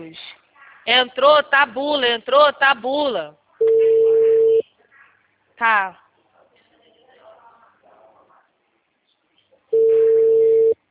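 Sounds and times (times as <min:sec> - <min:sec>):
speech: 0:00.0 - 0:03.4, 0:05.6 - 0:06.0
telephone tone from an unanswered call going to voicemail: 0:03.6 - 0:04.6, 0:09.8 - 0:10.8.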